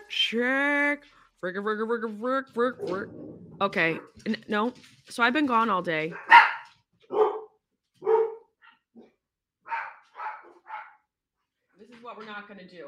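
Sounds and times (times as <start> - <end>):
speech: 0.3 - 6.4, 12.1 - 12.8
several pet dogs barking: 6.1 - 9.1, 9.7 - 11.0.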